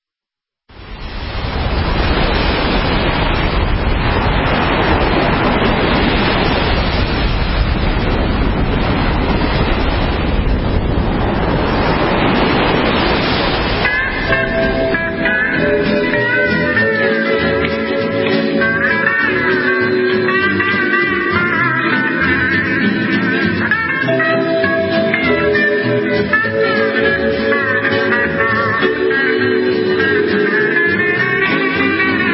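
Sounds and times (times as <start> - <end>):
ocean waves breaking on a beach: 0.7 - 32.3
tuneful instrumental melody: 13.8 - 32.3.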